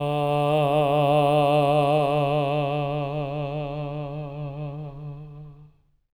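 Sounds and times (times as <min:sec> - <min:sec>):
tenor voice singing D3: 0:00.0 - 0:05.8.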